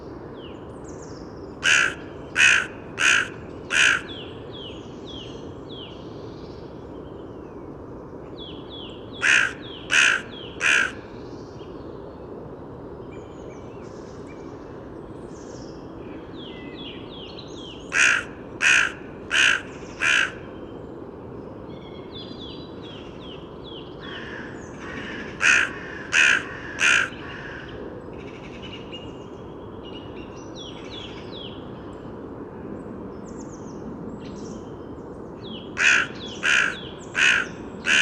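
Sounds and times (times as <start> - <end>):
songbirds chirping and trilling: 0.4 - 37.9
carrion crow cawing: 1.6 - 4.2, 9.2 - 11.0, 17.9 - 20.5, 24.0 - 28.6, 35.8 - 37.9.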